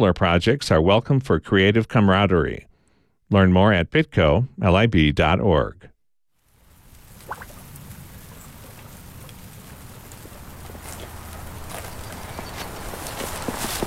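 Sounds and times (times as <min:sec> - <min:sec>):
speech: 0:00.0 - 0:02.7, 0:03.3 - 0:05.9
steady rain outdoors on a working ranch: 0:06.4 - 0:13.8
livestock hoof clops: 0:08.7 - 0:13.8.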